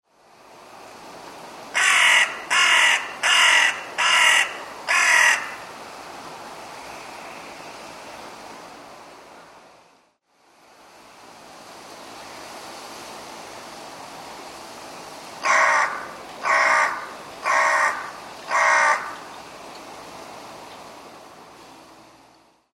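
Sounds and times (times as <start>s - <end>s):
carrion crow ground call in Fukuroi Shizuoka: 1.8s - 5.7s, 15.4s - 19.4s.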